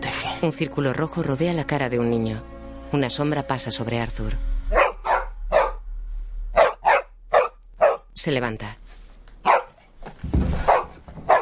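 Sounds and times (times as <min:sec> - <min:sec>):
speech: 0:00.2 - 0:04.5, 0:08.2 - 0:08.8
dog barking as it leaves a house: 0:04.7 - 0:05.8, 0:06.6 - 0:08.1, 0:09.4 - 0:09.9, 0:10.6 - 0:11.3.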